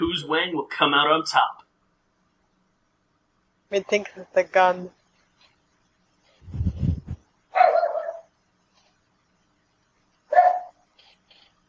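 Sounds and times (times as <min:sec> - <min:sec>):
speech: 0:00.0 - 0:01.6, 0:03.7 - 0:05.0
dog barking and yelping excitedly: 0:07.5 - 0:08.3, 0:10.3 - 0:10.8.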